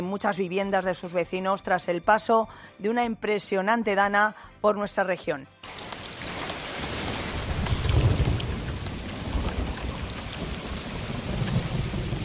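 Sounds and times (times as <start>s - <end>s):
speech: 0.1s - 6.0s
heavy rain: 5.6s - 12.2s
deep rumbles of thunder: 5.7s - 12.2s.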